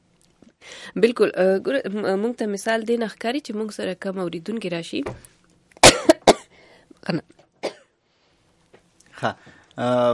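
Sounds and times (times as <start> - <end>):
speech: 0.9 - 5.3, 7.1 - 7.3, 9.2 - 10.1
person coughing harshly: 5.8 - 6.5, 7.6 - 7.9.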